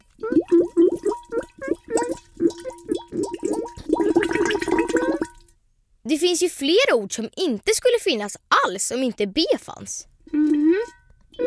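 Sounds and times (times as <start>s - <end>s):
voice imitating bubbling: 0.0s - 5.3s, 10.2s - 11.4s
speech: 6.2s - 10.9s.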